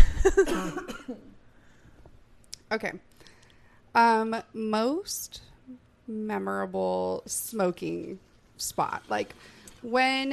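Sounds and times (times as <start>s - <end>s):
speech: 0.2s - 1.4s, 2.7s - 3.1s, 3.9s - 10.3s
dry harsh human coughs: 0.4s - 1.2s.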